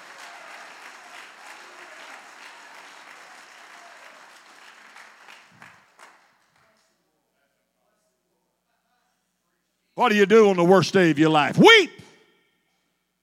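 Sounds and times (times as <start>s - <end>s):
large crowd audience clapping hands: 0.0s - 6.6s
speech: 10.0s - 12.0s.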